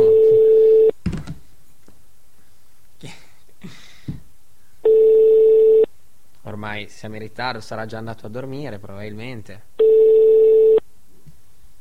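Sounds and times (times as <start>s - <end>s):
telephone ringback tone beep during an outgoing call: 0.0s - 0.9s, 4.8s - 5.9s, 9.8s - 10.8s
speech: 6.7s - 10.1s.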